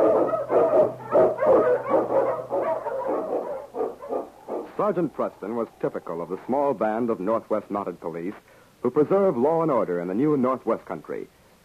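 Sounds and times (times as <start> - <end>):
low hum: 0.0 - 4.6
Eskimo sled dogs barking and yipping excitedly: 0.0 - 6.1
speech: 4.9 - 11.6.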